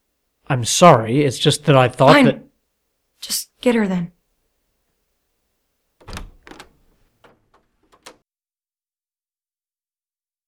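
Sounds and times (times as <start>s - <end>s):
speech: 0.5s - 2.5s, 3.2s - 4.2s
examination room door opening: 6.0s - 8.2s
light clicks and rattles of the door: 6.0s - 8.2s.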